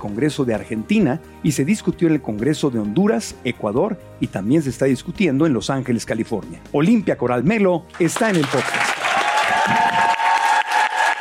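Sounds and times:
speech: 0.0s - 9.0s
crowd applause: 8.0s - 11.1s.

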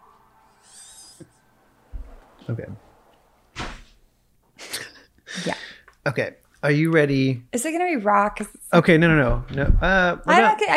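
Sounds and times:
speech: 2.5s - 2.9s, 5.4s - 10.7s
bump: 9.2s - 10.1s
door knocking and thumping as it closes and latches: 9.2s - 10.1s.

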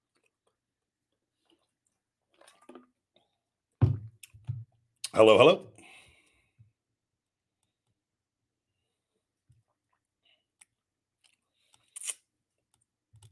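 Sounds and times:
person chewing food: 0.0s - 3.4s, 9.6s - 13.2s
speech: 5.2s - 5.7s.

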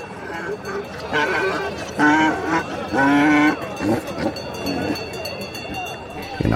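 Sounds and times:
sheep and goats bleating at an open-air livestock market on a hill: 0.0s - 5.0s
murmur of voices and bustle at an open-air livestock market: 0.0s - 6.5s
speech: 0.6s - 3.1s.

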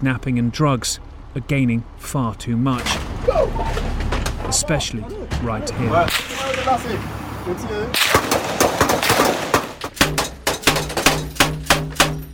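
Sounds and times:
speech: 0.0s - 3.7s, 4.5s - 8.2s
rounds striking an armoured police vehicle: 2.6s - 7.0s, 7.9s - 12.3s
gunfire in a gang-contested area: 8.0s - 12.3s.

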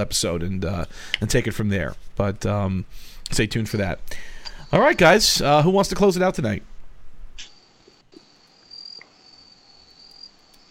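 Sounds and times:
speech: 0.0s - 6.7s
crickets chirping: 7.4s - 10.6s.

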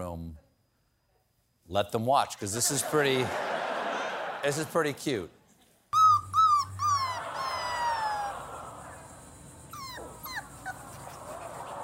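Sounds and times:
speech: 1.7s - 3.5s, 4.4s - 5.4s
laughter: 2.5s - 5.6s, 6.9s - 9.6s, 10.6s - 11.8s
newborn puppy whimpering and yipping: 6.0s - 8.4s, 9.6s - 11.8s.

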